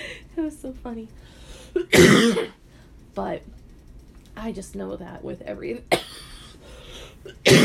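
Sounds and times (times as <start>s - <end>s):
speech: 0.4s - 2.6s, 3.2s - 3.6s, 4.4s - 6.1s
person coughing: 1.7s - 2.6s, 5.9s - 6.6s, 7.2s - 7.6s.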